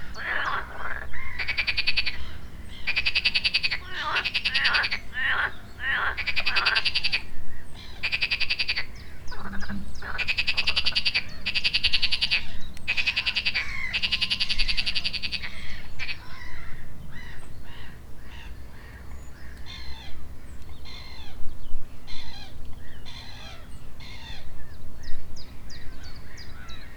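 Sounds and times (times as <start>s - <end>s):
frogs croaking in chorus at the edge of a pond: 0.0s - 21.4s.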